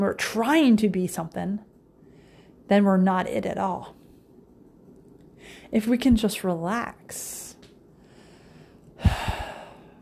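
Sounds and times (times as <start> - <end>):
speech: 0.0 - 1.7, 2.7 - 4.0, 5.5 - 7.6
person taking a breath in an office: 8.0 - 10.0.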